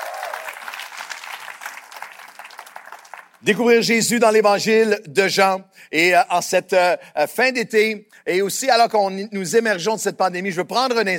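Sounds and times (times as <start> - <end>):
small group clapping: 0.0 - 3.4
speech: 3.4 - 11.1.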